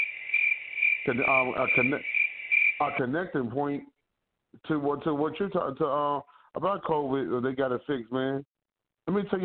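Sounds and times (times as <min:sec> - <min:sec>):
crickets chirping: 0:00.0 - 0:03.0
speech: 0:01.0 - 0:02.1, 0:02.8 - 0:09.4.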